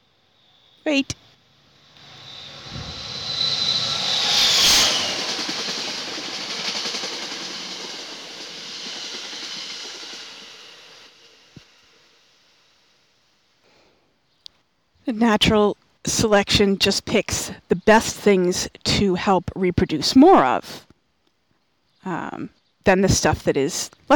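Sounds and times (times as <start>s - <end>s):
harsh high-pitched hiss of a passing train: 0.0s - 13.8s
speech: 0.8s - 1.2s, 15.2s - 20.9s, 22.0s - 24.1s
train rumbling past: 1.5s - 12.8s.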